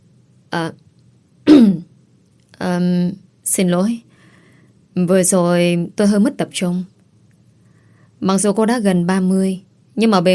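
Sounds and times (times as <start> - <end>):
speech: 0.6 - 0.8, 2.8 - 4.1, 5.0 - 6.9, 8.2 - 10.3
woman clearing her throat: 1.5 - 1.9.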